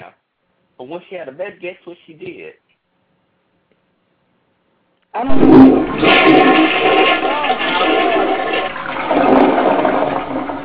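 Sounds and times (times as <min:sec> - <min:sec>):
speech: 0:00.8 - 0:02.6, 0:05.2 - 0:06.8
toilet flushing: 0:05.2 - 0:10.6.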